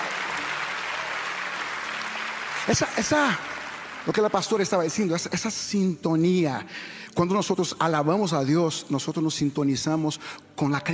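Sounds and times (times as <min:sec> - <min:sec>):
church congregation applauding: 0:00.0 - 0:05.5
speech: 0:02.6 - 0:10.9.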